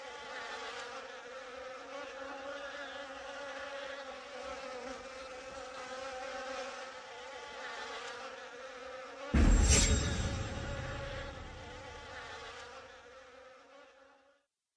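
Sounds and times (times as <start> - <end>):
insect-like buzzing drone: 0.0 - 14.4
heavy crash: 9.4 - 12.2.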